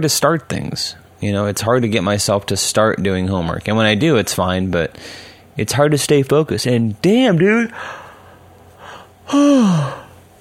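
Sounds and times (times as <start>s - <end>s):
speech: 0.0s - 8.0s, 9.3s - 10.0s
person yawning: 8.9s - 10.2s.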